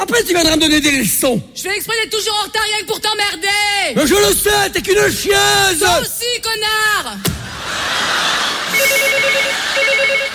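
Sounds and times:
speech: 0.0s - 7.3s
laughter: 7.2s - 10.3s
telephone ringing with a rapid electronic trill: 8.8s - 10.3s.

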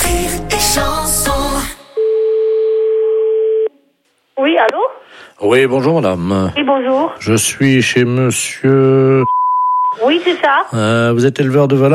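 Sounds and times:
speech: 0.2s - 1.4s, 5.4s - 11.9s
telephone tone after the other party hangs up: 2.0s - 3.7s.

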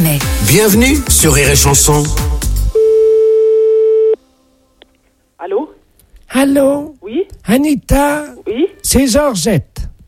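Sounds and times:
speech: 0.5s - 2.4s, 6.4s - 9.9s
telephone tone after the line is hung up: 2.8s - 4.2s.

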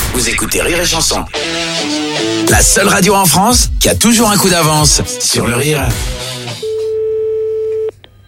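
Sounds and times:
speech: 0.2s - 6.3s
telephone ringback tone while placing a call: 6.6s - 7.9s.

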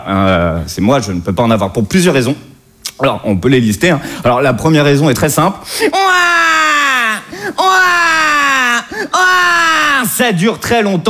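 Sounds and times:
speech: 0.0s - 6.6s, 9.0s - 11.0s
baby crying loudly in long wails: 5.7s - 10.2s
baby gasping breath: 7.3s - 7.6s, 8.9s - 9.2s.

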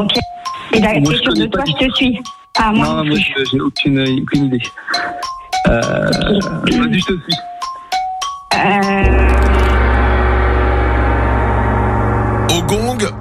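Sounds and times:
speech: 0.0s - 7.5s, 8.6s - 9.3s
loud resonant gong ringing: 9.0s - 13.1s.

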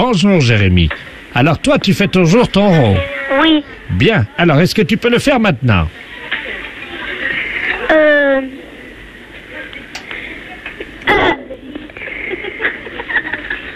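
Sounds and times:
speech: 0.0s - 6.1s
steady hum: 0.0s - 13.7s
child burping: 2.9s - 3.6s, 7.9s - 8.5s, 11.0s - 11.6s
laughter: 6.2s - 7.9s, 10.5s - 13.7s.

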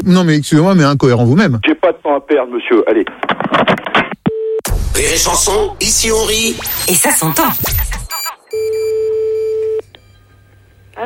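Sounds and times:
speech: 0.0s - 4.2s, 5.0s - 7.9s
short telephone beeps while a call is placed: 8.1s - 10.2s
long steady loud telephone tone: 8.6s - 11.0s.

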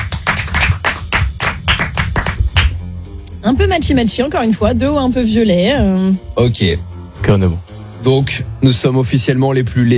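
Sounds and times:
studio audience clapping in a steady rhythmic beat: 0.0s - 2.9s
speech: 3.4s - 9.9s.

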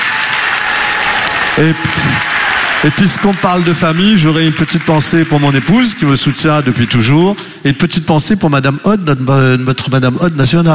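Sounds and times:
audience applause for families at a ceremony: 0.0s - 7.2s
speech: 1.6s - 10.7s.

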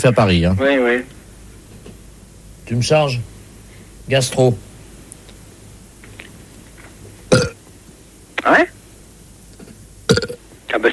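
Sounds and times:
speech: 0.0s - 1.2s, 2.7s - 3.3s, 4.1s - 4.7s
recorded burps played as hold music: 7.3s - 7.6s, 10.1s - 10.4s.

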